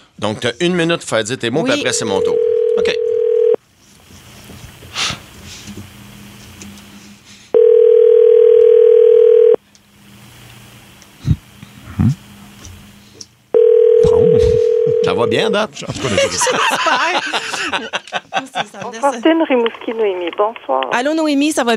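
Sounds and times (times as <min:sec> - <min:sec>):
speech: 0:00.2 - 0:03.0, 0:15.3 - 0:21.7
ringback tone on a telephone line while a call is placed: 0:01.9 - 0:03.6, 0:07.6 - 0:09.6, 0:13.6 - 0:15.5
laughter: 0:15.7 - 0:19.2.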